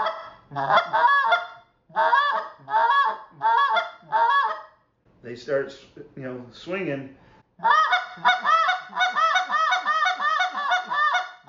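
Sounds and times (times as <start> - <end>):
goose call blown in clucks and drawn-out moans: 0.0 - 4.8, 7.6 - 11.4
speech: 0.5 - 1.1, 5.3 - 8.3.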